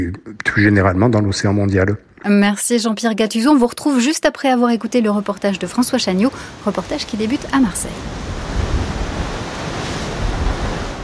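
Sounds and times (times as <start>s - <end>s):
speech: 0.0s - 8.4s
surf by the sea: 5.7s - 11.0s
strong Mistral wind roaring by the sea: 6.2s - 11.0s.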